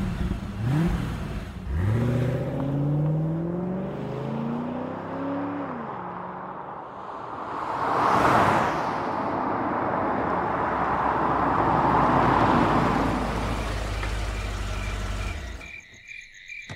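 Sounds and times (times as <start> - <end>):
car engine revving and accelerating through gear changes: 0.0 - 6.7, 10.4 - 15.7
car pass-by whoosh: 1.8 - 15.6.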